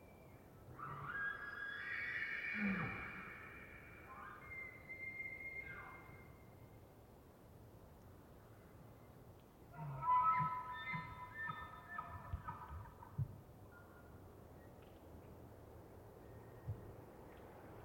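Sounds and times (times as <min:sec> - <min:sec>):
distant bull elk whistle: 0:00.7 - 0:06.3, 0:09.8 - 0:12.9.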